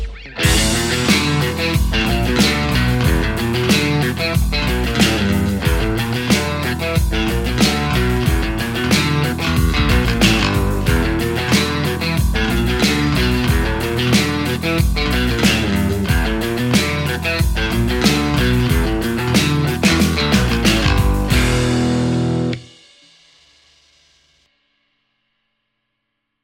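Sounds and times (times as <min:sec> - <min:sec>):
Stratocaster electric guitar through a JCM800 amplifier: 0:00.1 - 0:22.7.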